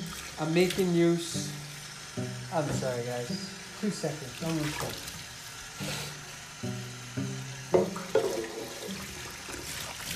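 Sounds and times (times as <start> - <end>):
water running from a tap: 0.0 - 10.1
speech: 0.4 - 1.6, 2.2 - 5.2, 5.8 - 6.1
plates or cutlery knocking against the sink: 7.7 - 8.9
dishes clinking and clattering: 7.8 - 9.0.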